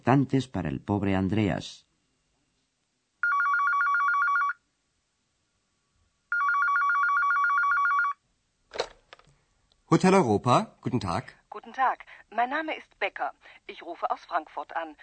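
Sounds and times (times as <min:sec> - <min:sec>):
speech: 0:00.0 - 0:01.9, 0:09.9 - 0:15.0
telephone ringing with an electronic warble: 0:03.2 - 0:04.6, 0:06.3 - 0:09.0
clatter of telephone receiver being picked up: 0:08.7 - 0:09.3.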